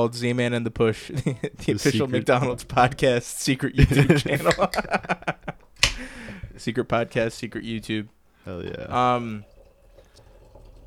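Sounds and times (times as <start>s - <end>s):
speech: 0.0s - 5.5s, 6.6s - 9.5s
laughter: 3.8s - 6.4s
seltzer and wine pouring into a glass: 8.9s - 10.8s.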